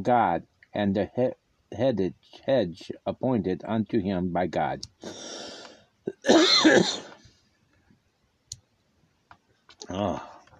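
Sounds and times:
speech: 0:00.0 - 0:05.6, 0:06.2 - 0:07.1, 0:09.9 - 0:10.3
person coughing at a microphone: 0:06.1 - 0:07.2.

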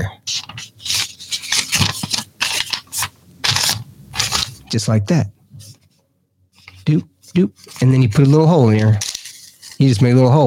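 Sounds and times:
sheet of paper rustling and crinkling while handled and folded: 0:00.3 - 0:04.8, 0:06.6 - 0:10.4
speech: 0:04.7 - 0:05.4, 0:06.9 - 0:09.1, 0:09.8 - 0:10.4.

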